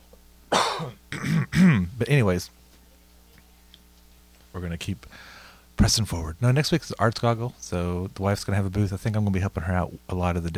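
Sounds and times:
person coughing: 0:00.5 - 0:01.9
rough throat clearing: 0:00.5 - 0:01.9
speech: 0:00.8 - 0:02.6, 0:04.6 - 0:10.5.

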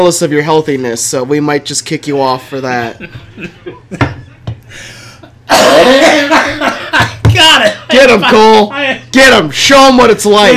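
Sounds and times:
speech: 0:00.0 - 0:04.9, 0:05.5 - 0:06.7, 0:07.4 - 0:10.5
laughter: 0:02.3 - 0:09.1
person coughing: 0:05.5 - 0:07.9.

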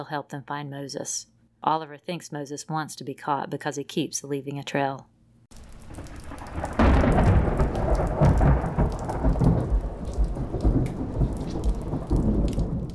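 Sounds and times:
speech: 0:00.0 - 0:06.7
heavy rain at night: 0:05.5 - 0:12.9
deep thunder rumbling: 0:05.6 - 0:12.9.

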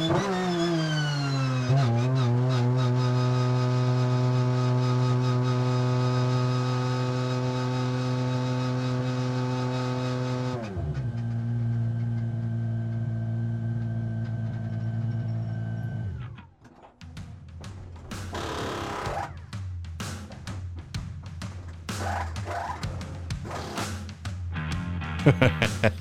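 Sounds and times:
Porsche 911 RSR 4.2-liter flat-six engine heard from inside the race car: 0:00.0 - 0:19.6, 0:21.5 - 0:24.0
sharp clatter and bursts from race car engine: 0:16.2 - 0:20.5, 0:21.4 - 0:24.1
laughter: 0:25.1 - 0:26.0.

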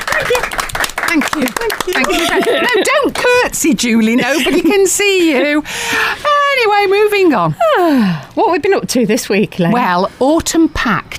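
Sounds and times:
round of applause with dense rapid clapping: 0:00.0 - 0:02.8
speech: 0:01.1 - 0:11.1
laughter: 0:01.4 - 0:05.6
voices calling out and chattering: 0:01.4 - 0:10.6.

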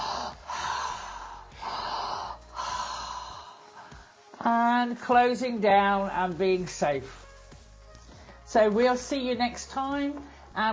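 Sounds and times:
slow airy breathing in and out through the mouth: 0:00.0 - 0:04.1
speech: 0:04.4 - 0:07.2, 0:08.5 - 0:10.7.

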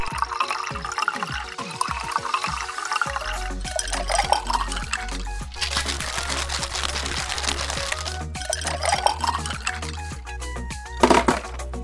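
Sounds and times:
drink being poured out: 0:00.0 - 0:10.2, 0:11.0 - 0:11.6
rhythmic music with low tones: 0:00.0 - 0:11.8.

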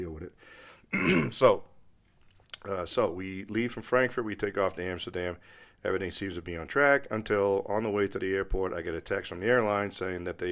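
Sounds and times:
speech: 0:00.2 - 0:01.7, 0:02.6 - 0:10.5
ill person clearing throat: 0:00.9 - 0:01.4.

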